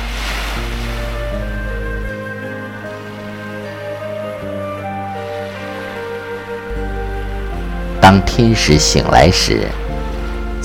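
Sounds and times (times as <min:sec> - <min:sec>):
rough ocean surf rushing: 0:00.0 - 0:02.1, 0:06.7 - 0:10.6
low droning musical chords: 0:00.0 - 0:02.2, 0:06.7 - 0:10.6
speech: 0:08.1 - 0:09.9.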